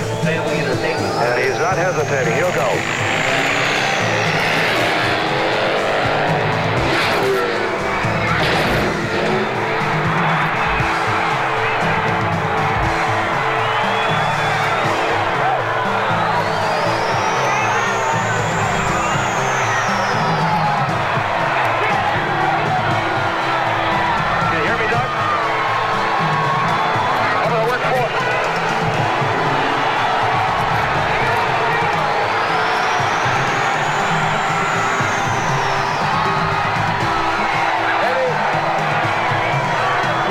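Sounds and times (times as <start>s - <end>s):
crowd cheering at a motorcycle stunt jump: 0.0s - 40.2s
motorcycle engine jumping from ramp to ramp: 0.0s - 40.2s
rising and falling whine: 0.1s - 21.0s, 28.7s - 37.3s
speech: 1.7s - 3.1s.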